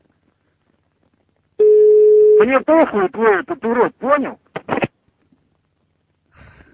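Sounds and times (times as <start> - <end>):
telephone busy tone: 1.6 - 2.4
speech: 2.4 - 4.4.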